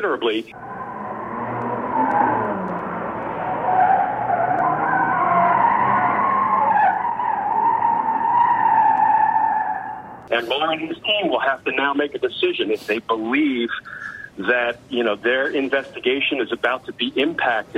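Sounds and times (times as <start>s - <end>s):
speech: 0.0s - 0.8s, 10.3s - 17.7s
tires squealing and skidding: 0.5s - 10.2s
car engine roaring: 0.5s - 11.1s.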